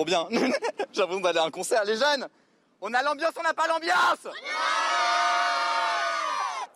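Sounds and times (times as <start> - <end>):
speech: 0.0 - 4.8
laughter: 0.2 - 1.0
euphoric crowd cheering for the pope: 4.3 - 6.7.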